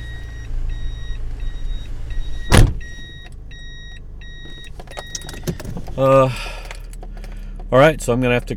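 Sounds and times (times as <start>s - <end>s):
electronic beeps: 0.0s - 5.7s
car engine idling while parking: 0.0s - 8.5s
sharp thump: 2.5s - 2.9s
speech: 6.0s - 6.6s, 7.7s - 8.5s.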